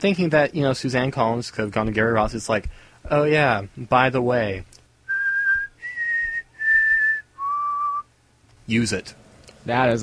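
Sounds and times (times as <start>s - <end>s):
speech: 0.0s - 4.8s, 8.7s - 10.0s
person whistling a tune for a recorded music track: 5.1s - 8.1s.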